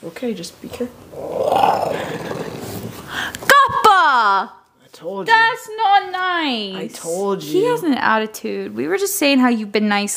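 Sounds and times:
speech: 0:00.0 - 0:02.4, 0:04.0 - 0:10.1
puppy growling: 0:01.1 - 0:03.1.

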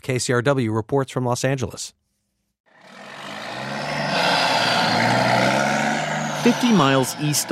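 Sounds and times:
speech: 0:00.0 - 0:02.0, 0:06.4 - 0:07.5
broadband road noise: 0:02.7 - 0:07.5
big-rig truck engines rumbling at a busy truck stop: 0:02.8 - 0:07.5.

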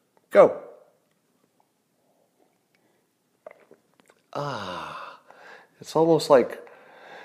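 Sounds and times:
speech: 0:00.3 - 0:00.6, 0:05.8 - 0:06.6
person sipping coffee: 0:01.6 - 0:05.4
swallow: 0:03.4 - 0:05.2.

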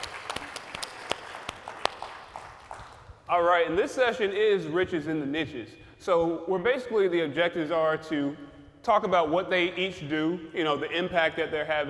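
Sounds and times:
light scattered audience applause from a small group at a session: 0:00.0 - 0:03.1
speech: 0:03.3 - 0:11.8.

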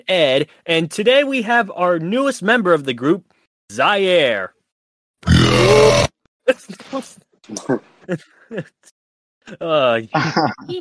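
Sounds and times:
speech: 0:00.0 - 0:04.6, 0:05.2 - 0:10.7
distorted bass boosted burp: 0:05.2 - 0:06.1
laughter: 0:07.6 - 0:08.9, 0:10.0 - 0:10.7.

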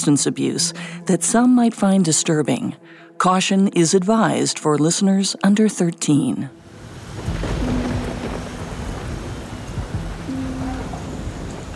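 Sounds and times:
speech: 0:00.0 - 0:07.5
steady rain pouring with a dense hiss: 0:06.6 - 0:11.7
low rumbling thunder: 0:06.8 - 0:11.7.

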